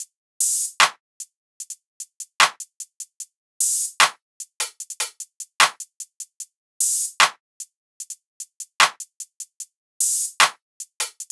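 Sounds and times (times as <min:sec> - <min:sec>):
hip hop drum loop at 150 BPM: 0:00.0 - 0:01.0, 0:02.4 - 0:02.6, 0:03.6 - 0:05.9, 0:06.8 - 0:07.4, 0:08.0 - 0:09.3, 0:10.0 - 0:11.2.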